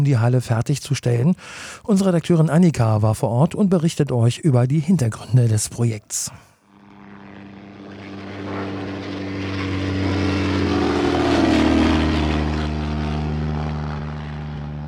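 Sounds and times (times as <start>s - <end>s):
speech: 0.0s - 6.5s
propeller plane engine droning at Purkshof airfield near Mönchhagen: 6.7s - 14.8s.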